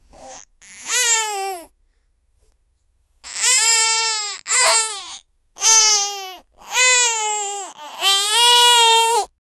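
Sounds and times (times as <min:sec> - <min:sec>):
baby crying: 0:00.3 - 0:01.7, 0:03.2 - 0:09.3.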